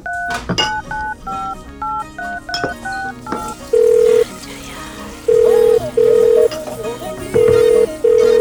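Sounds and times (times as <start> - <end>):
phone keypad dialing beeps: 0.0 - 4.3, 5.3 - 6.6, 7.3 - 8.3
music: 0.0 - 8.3
long steady phone ringing beeps as the call goes through: 3.7 - 4.3, 5.3 - 6.6, 7.4 - 8.3.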